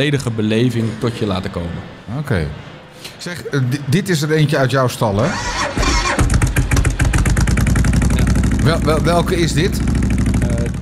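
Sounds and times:
speech: 0.0 - 5.9, 8.7 - 10.0
Suzuki VL 1500 motorcycle with custom exhaust starting and idling: 5.3 - 10.8.

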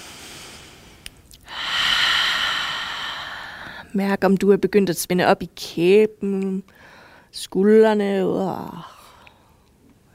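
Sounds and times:
slow deep breath drawn in: 0.0 - 3.9, 6.7 - 7.3
speech: 3.9 - 9.0.

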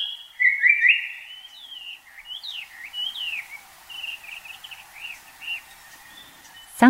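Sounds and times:
Japanese paradise flycatcher song on Mount Takao, Tokyo, Japan: 0.0 - 6.8.

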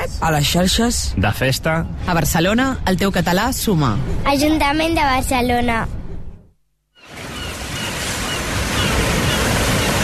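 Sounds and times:
speech: 0.2 - 6.0
sea waves surging, a broad roaring wash of surf: 7.0 - 10.0.

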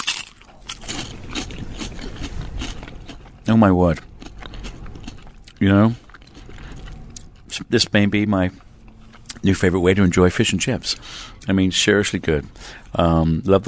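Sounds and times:
person biting into and chewing crispy fried fish and chips: 0.0 - 7.7
speech: 3.5 - 4.1, 5.6 - 6.0, 7.6 - 8.6, 9.4 - 13.6.

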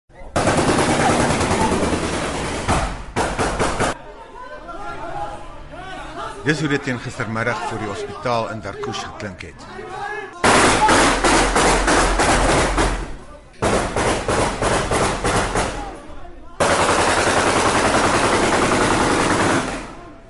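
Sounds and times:
rapid automatic gunfire fired into the air: 0.4 - 4.0, 10.4 - 15.9, 16.6 - 20.1
speech: 6.4 - 10.2.

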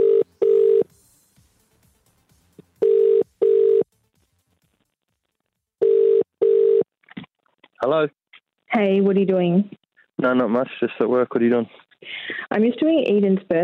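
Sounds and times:
outgoing phone call ringback tone: 0.0 - 0.9, 2.8 - 3.8, 5.8 - 6.8
speech: 7.8 - 13.6.

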